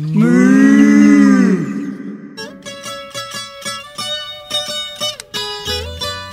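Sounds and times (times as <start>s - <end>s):
cow mooing: 0.2s - 2.5s.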